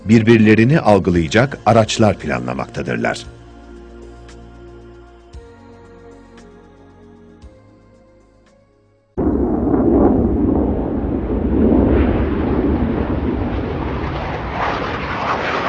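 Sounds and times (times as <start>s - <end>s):
soft tonal music: 0.0s - 9.2s
speech: 0.1s - 3.4s
jet aircraft roar passing overhead: 9.2s - 15.6s.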